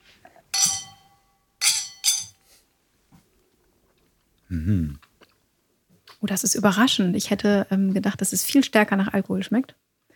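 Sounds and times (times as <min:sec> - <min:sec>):
cocktail glasses clinking in a toast: 0:00.5 - 0:02.4
speech: 0:04.5 - 0:05.1, 0:06.2 - 0:09.8.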